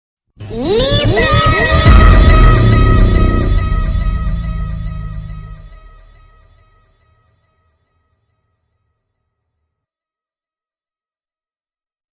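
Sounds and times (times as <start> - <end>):
bombo bass drum impact: 0.8 - 6.6.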